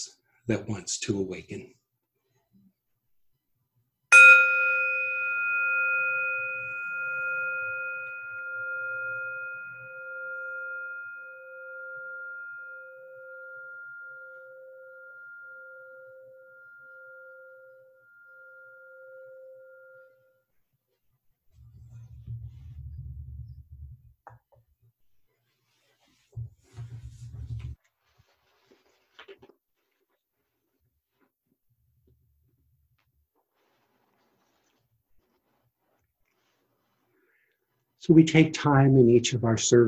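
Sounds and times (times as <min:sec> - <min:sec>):
speech: 0:00.0 - 0:01.8, 0:38.1 - 0:39.8
single bell rung as a wake-up bell: 0:04.1 - 0:20.3.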